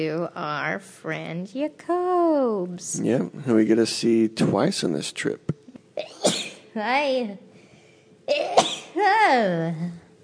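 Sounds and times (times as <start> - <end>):
speech: 0.0 - 6.1, 6.8 - 7.5, 8.3 - 10.0
person sneezing: 6.0 - 6.6, 8.3 - 9.0.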